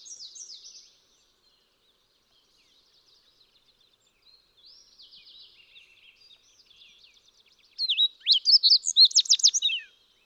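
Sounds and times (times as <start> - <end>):
fox sparrow singing: 7.8 - 9.9.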